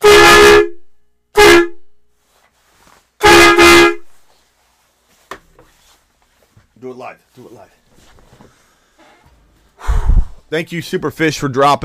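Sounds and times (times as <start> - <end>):
air horn toots sound effect: 0.0 - 2.0, 3.2 - 4.3
speech: 7.0 - 8.6, 10.5 - 11.8.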